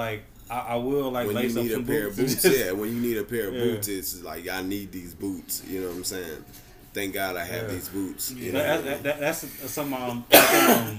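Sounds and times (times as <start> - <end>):
speech: 0.0 - 10.9
laughter: 2.1 - 2.9, 8.4 - 10.0
man coughing, a heavy smoker: 10.3 - 10.9.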